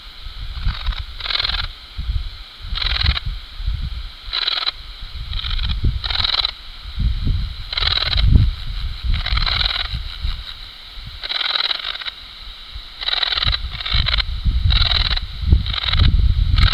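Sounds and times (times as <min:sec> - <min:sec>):
Antaxius difformis: 0:00.0 - 0:16.7.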